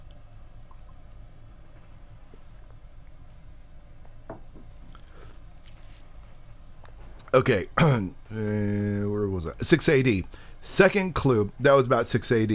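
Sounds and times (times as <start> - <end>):
low steady hum: 0.0 - 12.5
person drinking water: 4.8 - 5.4
speech: 7.3 - 8.7, 9.4 - 12.5.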